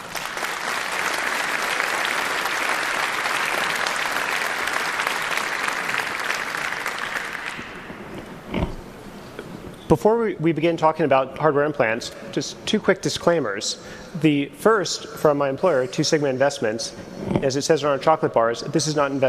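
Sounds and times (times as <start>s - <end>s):
audience applause welcoming a speaker: 0.0s - 8.3s
speech: 9.9s - 19.2s.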